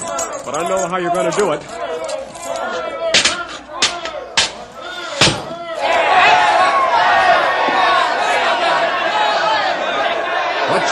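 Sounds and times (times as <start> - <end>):
speech: 0.5 - 1.8
angry mob of boys shouting: 1.0 - 10.8
sharp bangs: 3.1 - 5.8.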